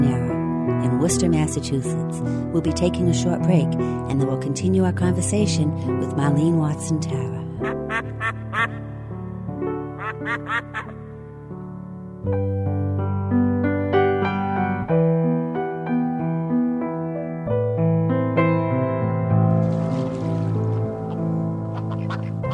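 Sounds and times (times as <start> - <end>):
instrumental music: 0.0 - 22.5
speech: 0.8 - 8.1
duck quacks: 7.6 - 8.8, 10.0 - 11.0, 21.7 - 22.5.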